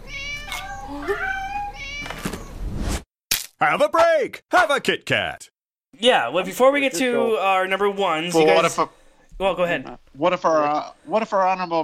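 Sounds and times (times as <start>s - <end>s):
cats meowing: 0.0s - 2.5s
speech: 0.9s - 1.3s, 3.6s - 11.8s.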